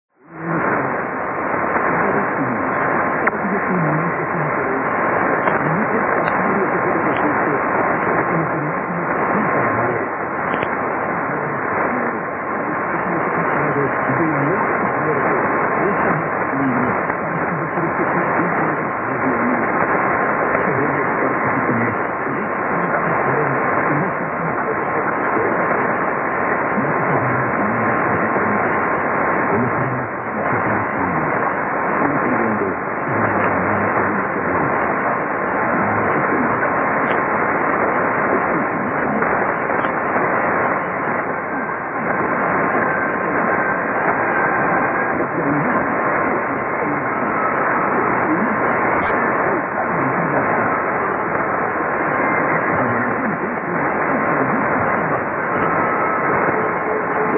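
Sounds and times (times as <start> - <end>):
6155.3kHz shortwave radio broadcast: 0.1 - 57.3.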